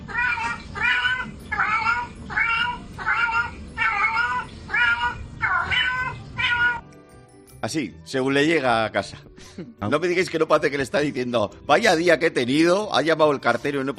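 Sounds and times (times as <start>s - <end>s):
cat meowing at owner arriving home: 0.0s - 6.9s
speech: 7.7s - 13.9s.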